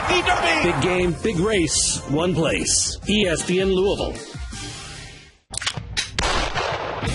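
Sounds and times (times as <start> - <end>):
speech: 0.2 - 4.4
gunfire at a shooting range: 6.1 - 7.1.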